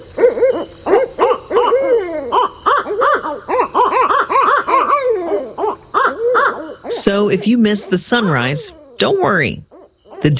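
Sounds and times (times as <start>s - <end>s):
owl hooting: 0.0s - 10.3s
speech: 7.0s - 10.3s.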